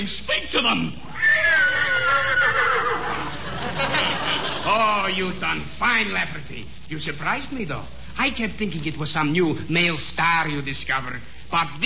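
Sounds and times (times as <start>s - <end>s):
speech: 0.0s - 1.6s, 2.2s - 11.8s
horse whinnying: 1.0s - 3.3s
laughter: 2.3s - 5.2s.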